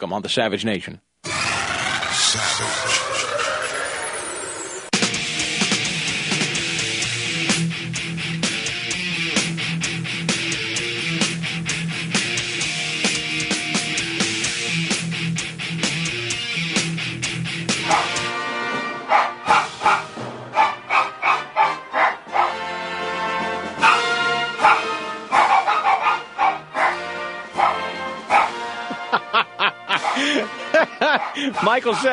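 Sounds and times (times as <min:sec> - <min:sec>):
speech: 0:00.0 - 0:01.1, 0:02.2 - 0:03.7, 0:31.7 - 0:32.1
laughter: 0:02.1 - 0:04.2, 0:28.7 - 0:32.1
busy musical backing: 0:02.9 - 0:32.0
dog barking in rhythmic bursts like a tune: 0:17.8 - 0:18.2, 0:19.1 - 0:22.6, 0:23.8 - 0:28.6, 0:29.9 - 0:30.4, 0:31.0 - 0:32.1.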